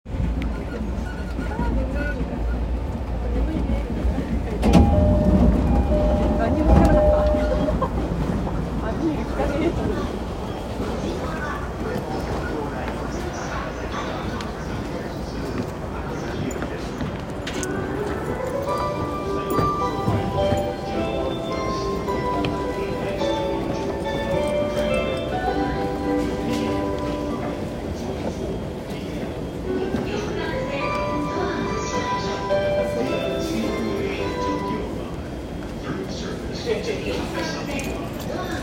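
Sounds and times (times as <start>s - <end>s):
train sounds on a Tokaido Line train at Fujisawa: 0.1s - 38.6s.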